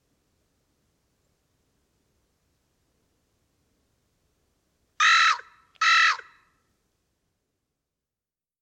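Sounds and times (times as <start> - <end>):
Carrion crow Corvus corone cawing: 5.0 - 6.5.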